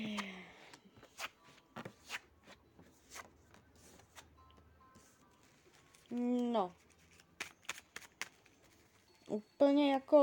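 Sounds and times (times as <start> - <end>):
tarot cards being shuffled and laid out: 1.0 - 4.3, 5.0 - 9.0
speech: 6.1 - 6.8, 9.4 - 10.2.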